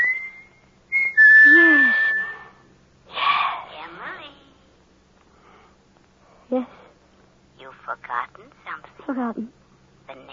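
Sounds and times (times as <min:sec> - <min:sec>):
person whistling a high steady signal: 0:00.0 - 0:02.6
speech: 0:08.0 - 0:10.3.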